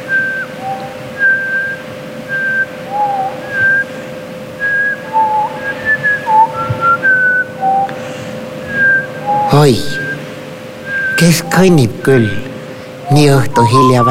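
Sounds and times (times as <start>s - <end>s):
whistled melody: 0.0s - 3.9s, 4.6s - 8.0s, 8.6s - 10.2s, 10.8s - 11.8s, 13.0s - 14.0s
speech: 9.6s - 10.0s, 11.2s - 12.5s, 13.1s - 14.0s.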